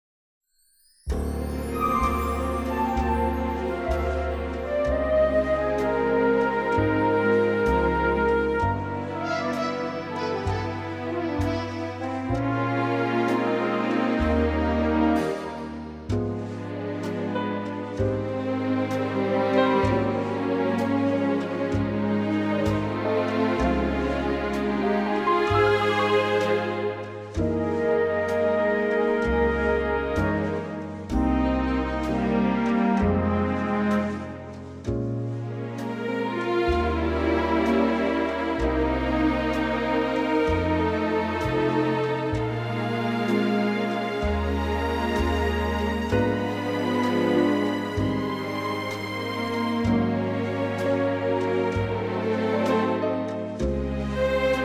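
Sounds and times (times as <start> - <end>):
orchestral music in A-flat: 0.7 - 54.6.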